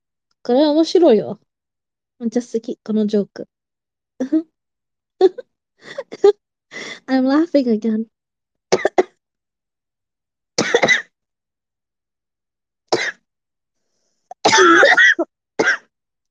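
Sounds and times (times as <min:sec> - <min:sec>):
speech: 0:00.4 - 0:01.4, 0:02.2 - 0:03.5, 0:04.2 - 0:04.5, 0:05.2 - 0:08.1
person coughing: 0:10.6 - 0:11.1, 0:14.3 - 0:15.9
person clearing throat: 0:14.3 - 0:15.8.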